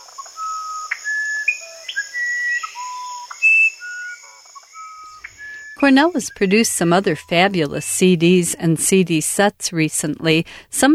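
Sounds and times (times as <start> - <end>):
insect drone: 0.0 - 8.2
musician wren singing: 0.0 - 8.2
speech: 5.8 - 10.9.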